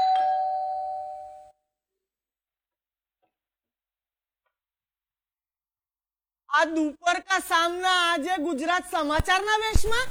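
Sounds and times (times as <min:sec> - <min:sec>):
single electronic doorbell tone ringing: 0:00.0 - 0:01.5
speech: 0:06.6 - 0:10.0.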